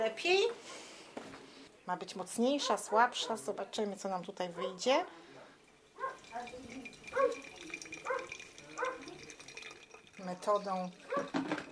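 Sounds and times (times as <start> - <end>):
speech: 0.0 - 0.8, 1.9 - 5.3, 10.2 - 11.4
faint kitchen clatter: 0.0 - 11.7
dog barking behind a fence: 2.6 - 3.5, 4.5 - 5.3, 6.0 - 6.4, 7.1 - 9.2, 11.0 - 11.4
running water: 5.6 - 11.7.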